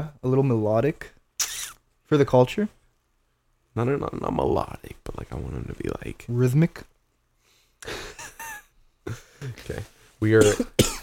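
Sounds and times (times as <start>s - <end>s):
speech: 0.0s - 1.2s, 2.1s - 2.8s, 3.8s - 6.9s, 7.8s - 8.3s, 9.1s - 11.0s
harsh raspy coughs: 10.4s - 11.0s.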